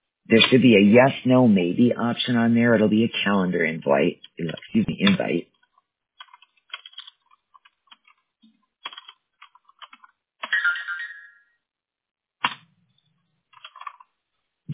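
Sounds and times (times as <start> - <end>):
speech: 0.3 - 5.5
personal phone ringing with short electronic tones: 10.5 - 11.6.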